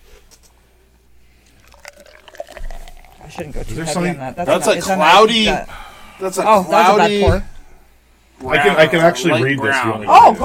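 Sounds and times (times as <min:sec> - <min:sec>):
beer pouring into a glass: 0:01.4 - 0:04.0
speech: 0:03.3 - 0:07.5, 0:08.4 - 0:10.4.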